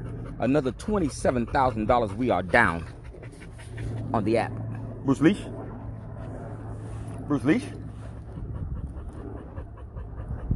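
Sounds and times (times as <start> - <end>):
pit bull on a leash panting: 0.0 - 4.7, 7.5 - 10.5
speech: 0.4 - 3.0, 3.8 - 5.6, 7.3 - 7.8.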